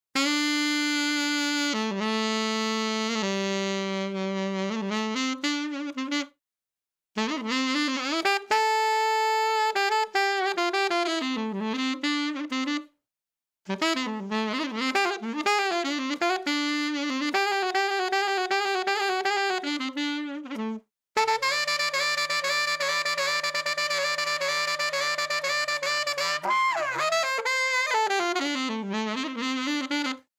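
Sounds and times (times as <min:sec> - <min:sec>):
unmixed saxophone: 0:00.2 - 0:06.4, 0:07.2 - 0:13.0, 0:13.7 - 0:30.3.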